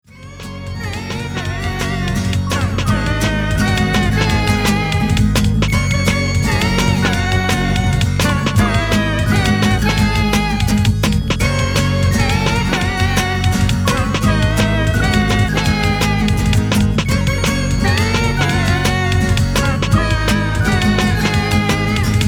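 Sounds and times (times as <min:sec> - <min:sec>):
upbeat pop song: 0:00.1 - 0:22.2.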